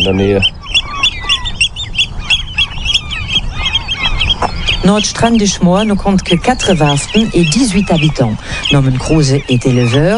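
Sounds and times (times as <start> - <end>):
speech: 0.0 - 0.6, 4.8 - 10.1
Eurasian oystercatchers piping on a Hallig island: 0.0 - 10.1.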